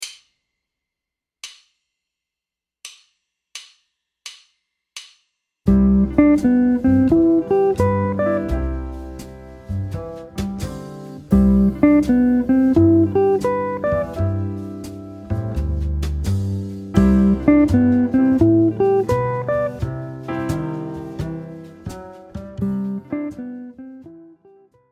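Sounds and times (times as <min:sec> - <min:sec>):
jazz guitar major phrase with upper and lower diatonic enclosures: 0:05.7 - 0:24.3.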